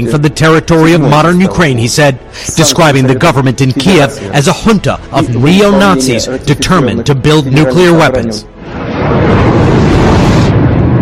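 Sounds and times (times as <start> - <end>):
speech: 0.0 - 8.5
two jet aircraft flying over a city: 8.6 - 10.9.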